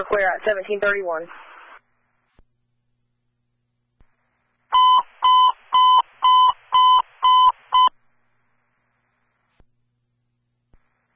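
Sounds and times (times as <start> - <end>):
speech: 0.0 - 1.5
fire alarm beeping with loud electronic tones: 4.8 - 7.9.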